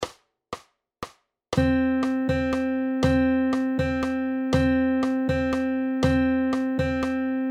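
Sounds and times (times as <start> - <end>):
duplet rhythm notes, two notes within three beats: 1.6 - 7.5.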